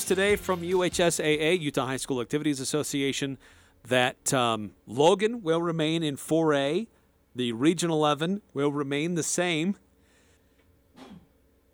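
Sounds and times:
speech: 0:00.1 - 0:09.9
sneeze: 0:11.0 - 0:11.4.

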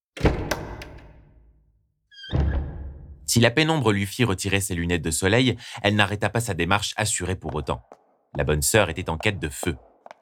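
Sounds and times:
brief high church door creak: 0:00.1 - 0:01.5, 0:02.1 - 0:03.2
large heavy oak church door opening: 0:00.1 - 0:01.5
heavy oak church door clunk: 0:00.2 - 0:01.6
speech: 0:03.3 - 0:09.9.

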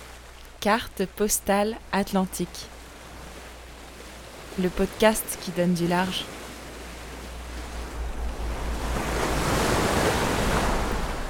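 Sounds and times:
ocean waves splashing beneath a boat's bow: 0:00.0 - 0:11.2
speech: 0:00.6 - 0:02.8, 0:04.6 - 0:06.4
steady wind buffeting the microphone: 0:06.4 - 0:11.2.

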